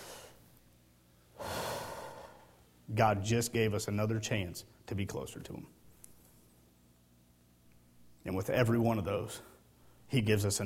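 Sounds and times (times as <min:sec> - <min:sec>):
group breathing in and out in unison: 0:00.0 - 0:00.5, 0:01.3 - 0:02.6
speech: 0:02.9 - 0:05.8, 0:08.2 - 0:09.5, 0:10.1 - 0:10.6.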